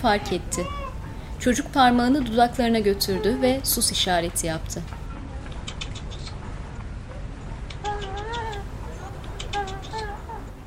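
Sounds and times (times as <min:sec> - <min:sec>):
speech: 0:00.0 - 0:00.8, 0:01.4 - 0:05.0
steady outdoor hiss: 0:00.0 - 0:10.6
pigeon cooing on a rooftop: 0:07.6 - 0:10.6.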